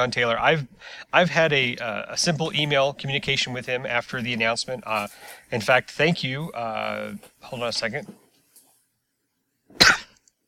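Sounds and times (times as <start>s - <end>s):
speech: 0.0s - 8.2s
cough: 9.8s - 10.2s.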